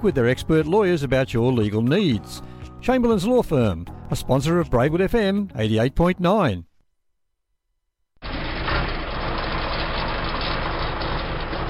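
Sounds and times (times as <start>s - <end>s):
speech: 0.0s - 6.7s
heavy diesel tractor engine starting and idling: 8.2s - 11.6s.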